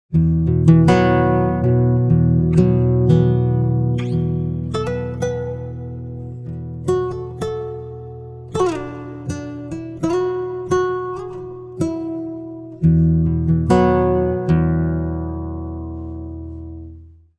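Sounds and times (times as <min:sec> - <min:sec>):
guitar pitch-shifted down five: 0:00.1 - 0:17.0.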